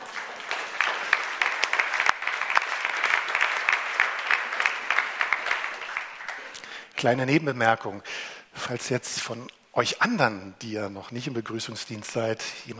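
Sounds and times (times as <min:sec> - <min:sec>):
audience clapping: 0:00.0 - 0:07.2
speech: 0:07.0 - 0:12.7.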